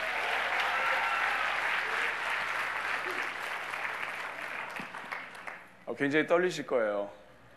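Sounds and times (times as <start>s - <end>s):
congregation applauding: 0.0s - 5.7s
speech: 6.0s - 7.2s.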